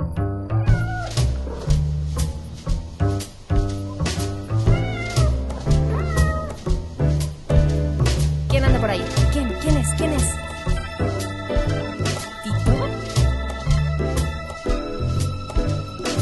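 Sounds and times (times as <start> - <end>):
cat meowing: 0.6 - 1.3, 4.6 - 6.7
busy musical backing with a steady bass-heavy beat: 0.7 - 16.2.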